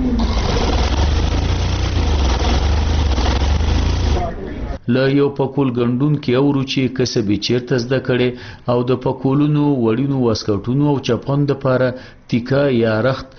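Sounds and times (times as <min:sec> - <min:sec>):
sewing machines whirring while stitching rolled wool caps: 0:00.2 - 0:04.2
speech: 0:04.9 - 0:13.3.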